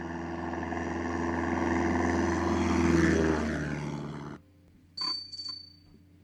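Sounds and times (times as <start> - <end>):
propeller plane engine roaring during takeoff from aircraft carrier: 0.0 - 4.4
brief high metallic rings: 5.0 - 6.0.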